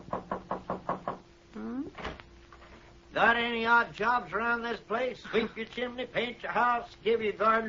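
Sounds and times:
sharp knocks on a back door: 0.0s - 1.3s
speech: 3.2s - 7.6s.

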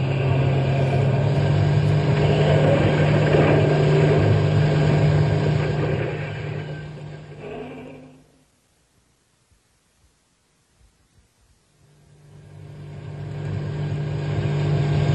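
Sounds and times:
truck engine rumbling at full speed: 0.0s - 8.5s, 11.9s - 15.1s.

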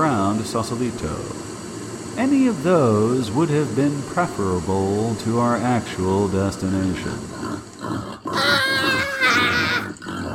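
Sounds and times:
speech: 0.4s - 1.5s, 2.2s - 8.1s
pigs grunting on a pig-infested property: 6.9s - 10.3s
pigs squealing on a pig-infested property: 7.3s - 10.3s.

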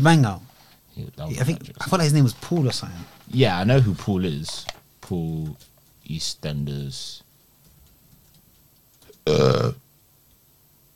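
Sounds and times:
speech: 0.0s - 7.2s, 9.3s - 9.8s
deep rumbling burp: 9.2s - 9.8s.

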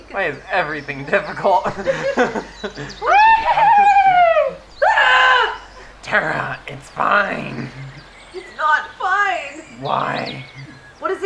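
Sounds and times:
speech: 0.1s - 3.9s, 6.1s - 7.8s, 8.6s - 10.5s
burst of voices: 0.1s - 11.2s
laughter: 0.2s - 8.6s
person screaming: 3.0s - 5.8s.

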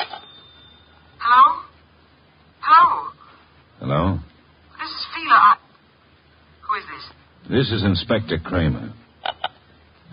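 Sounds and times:
telephone ringing: 0.0s - 1.5s
speech: 3.9s - 4.3s, 7.5s - 9.0s.

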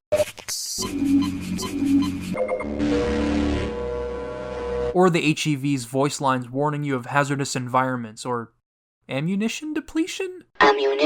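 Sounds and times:
speech: 0.5s - 3.3s, 4.9s - 11.0s
video game suit recharge buzzing charge with a hissy edge: 1.7s - 4.9s.

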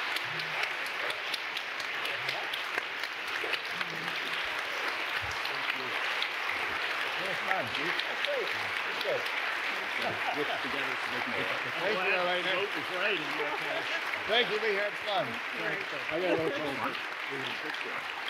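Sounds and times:
faint murmuring voices: 0.0s - 18.0s
sizable crowd applauding: 0.0s - 18.2s
laughter: 7.2s - 17.7s
speech: 7.6s - 9.4s, 10.0s - 18.2s.

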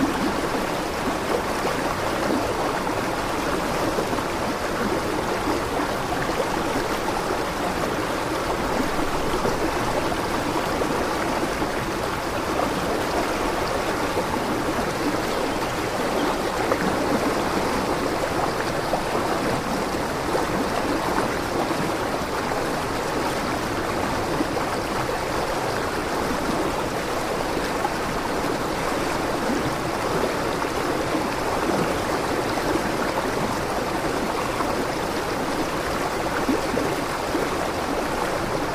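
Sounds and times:
forest stream flowing: 0.0s - 38.7s.

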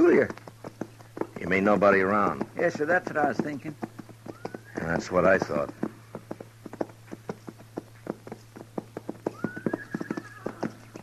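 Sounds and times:
clip-clop of hooves of saddled horses on a street: 0.0s - 11.0s
low constant hum: 0.0s - 11.0s
speech: 0.2s - 0.4s, 1.5s - 3.9s, 4.9s - 5.8s
horse whinny: 4.3s - 5.1s, 9.2s - 11.0s.

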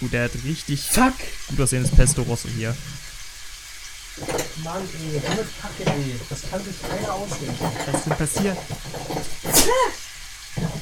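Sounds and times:
speech: 0.0s - 3.0s, 4.2s - 10.0s
person sneezing: 9.4s - 10.1s.

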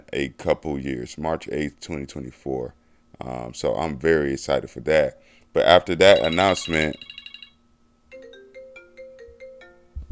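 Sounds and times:
speech: 0.1s - 7.2s
phone ringtone with high chirps and electronic melody: 6.0s - 9.8s.

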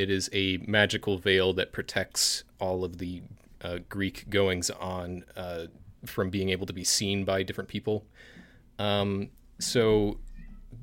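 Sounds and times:
speech: 0.0s - 10.8s
cat meowing from another room: 10.2s - 10.8s.

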